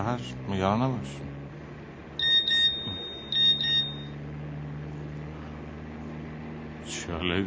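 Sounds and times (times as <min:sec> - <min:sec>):
low steady hum: 0:00.0 - 0:07.4
speech: 0:00.1 - 0:01.3, 0:06.8 - 0:07.4
phone SMS text message notification beeps: 0:02.2 - 0:03.9.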